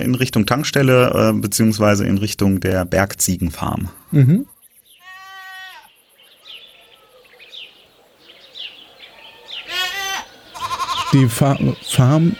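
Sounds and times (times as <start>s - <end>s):
speech: 0.0s - 4.5s, 11.1s - 12.3s
faint chirping: 0.0s - 12.3s
sheep bleating: 5.0s - 5.9s, 9.1s - 12.3s.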